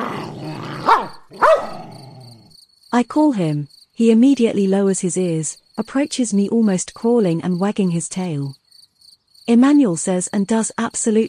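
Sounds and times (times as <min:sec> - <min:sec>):
dog growling aggressively: 0:00.0 - 0:02.5
speech: 0:03.0 - 0:08.6, 0:09.5 - 0:11.2.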